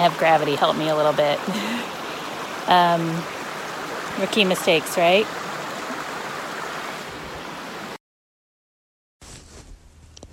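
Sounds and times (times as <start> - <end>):
speech: 0.0 - 2.0, 2.6 - 3.4, 4.2 - 5.4
creek water flowing: 0.0 - 8.0.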